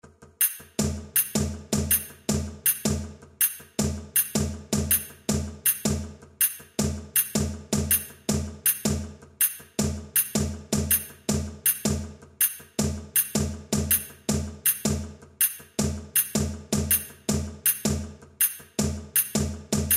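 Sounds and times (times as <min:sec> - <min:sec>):
two cajons playing a groove: 0:00.8 - 0:19.9.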